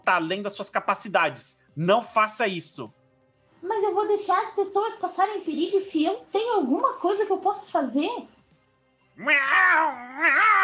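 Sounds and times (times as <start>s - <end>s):
speech: 0.0s - 3.0s, 3.6s - 8.4s, 9.2s - 10.6s
person doing a wavering meow imitation: 9.2s - 10.6s.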